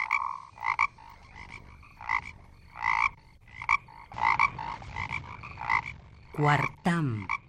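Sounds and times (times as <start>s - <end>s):
toad croaking: 0.0s - 7.4s
speech: 6.4s - 7.4s.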